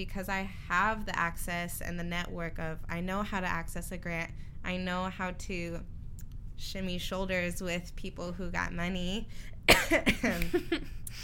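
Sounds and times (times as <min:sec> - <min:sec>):
speech: 0:00.0 - 0:06.0, 0:06.6 - 0:11.2
person coughing: 0:09.7 - 0:10.8.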